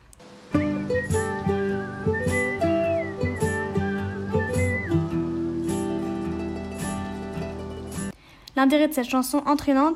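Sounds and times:
bright whistled melody: 0.5 - 8.1
plucked strings: 0.5 - 8.1
speech: 8.6 - 9.9.

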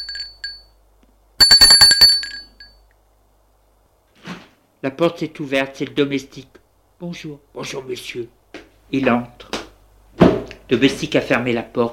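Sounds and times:
apartment doorbell chiming and ringing: 0.0 - 0.7, 1.4 - 2.8
speech: 4.8 - 9.6, 10.7 - 11.9.

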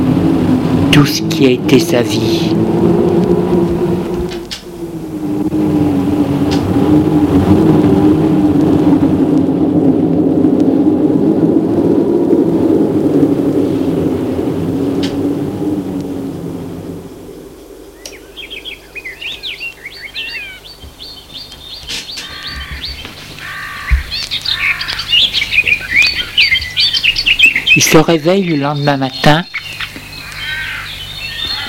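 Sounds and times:
birds chirping in a morning chorus: 0.0 - 9.9, 10.7 - 31.6
speech: 1.0 - 2.7, 28.0 - 29.6
harsh cawing bird call: 18.0 - 21.2, 21.9 - 27.8, 29.5 - 31.6.

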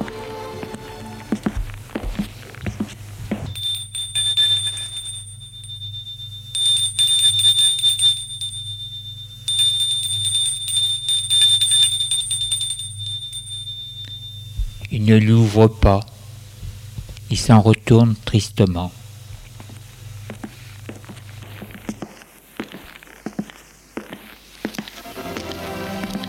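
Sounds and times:
low steady hum: 0.0 - 26.2
high piercing electric doorbell ringing at a house: 3.5 - 14.8
speech: 15.1 - 16.1, 17.3 - 19.0.

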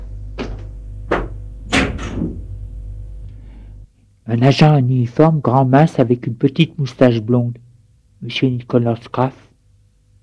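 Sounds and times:
steady low hum: 0.0 - 10.2
front door being opened: 0.4 - 2.5
speech: 4.3 - 7.6, 8.2 - 9.5.

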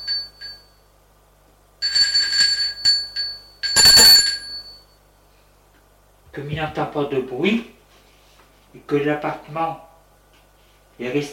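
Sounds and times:
electronic doorbell ringing at an apartment door: 0.0 - 0.8, 1.8 - 5.0
speech: 6.4 - 7.8, 8.7 - 9.9, 11.0 - 11.3.

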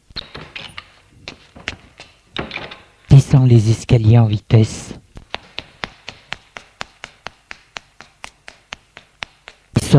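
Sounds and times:
apartment door opening: 0.1 - 3.1
speech: 3.3 - 5.0.

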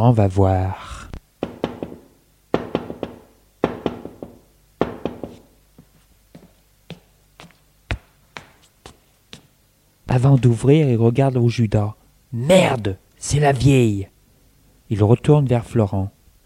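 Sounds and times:
speech: 0.0 - 0.9, 10.2 - 14.1, 14.9 - 16.2
knocking on a front door: 1.4 - 5.5.

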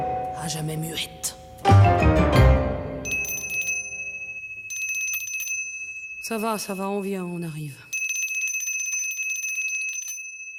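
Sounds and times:
speech: 0.5 - 2.4, 6.3 - 7.9
small hand bell shaken: 3.1 - 6.9, 7.9 - 10.5.

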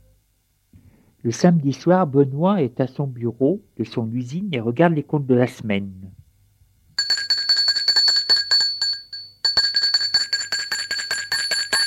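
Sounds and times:
speech: 1.2 - 6.2
bright metallic electric doorbell at a factory office: 7.0 - 11.8.

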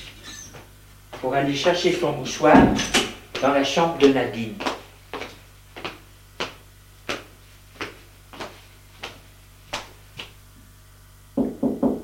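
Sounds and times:
speech: 1.2 - 4.7
knocking on a bedroom door: 11.3 - 12.0.

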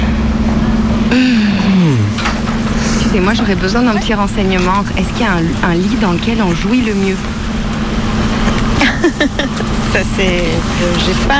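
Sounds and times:
fan humming with a low constant drone: 0.0 - 11.3
voice sliding downward: 1.1 - 2.4
speech: 3.2 - 7.6, 9.0 - 11.3
laughter: 8.8 - 9.8.

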